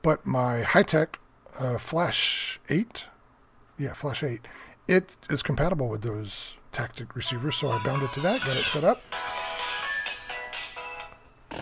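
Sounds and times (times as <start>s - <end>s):
speech: 0.0s - 3.1s, 3.8s - 9.3s
phone ringtone with bright electronic melody: 7.3s - 11.1s.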